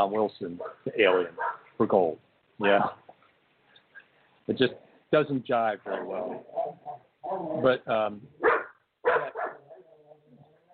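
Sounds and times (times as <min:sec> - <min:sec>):
speech: 0:00.0 - 0:03.0, 0:04.5 - 0:08.6
dog barking: 0:00.6 - 0:01.7, 0:08.4 - 0:09.8
dog whining softly: 0:06.0 - 0:07.8, 0:08.4 - 0:10.7.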